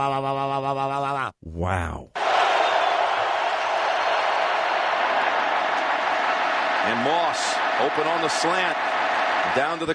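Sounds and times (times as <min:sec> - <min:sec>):
speech: 0:00.0 - 0:02.2, 0:06.8 - 0:09.9
large stadium crowd roaring at a football game: 0:02.2 - 0:09.9.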